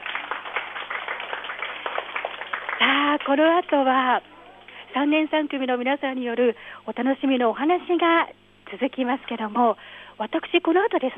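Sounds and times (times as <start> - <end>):
audience applause at a school storytelling event: 0.0 - 4.0
speech: 3.2 - 4.3, 5.0 - 11.1.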